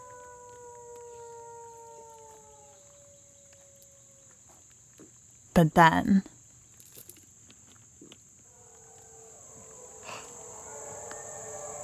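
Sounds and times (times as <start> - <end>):
pack of wolves howling together: 0.0 - 4.5, 8.4 - 11.8
speech: 5.6 - 6.3.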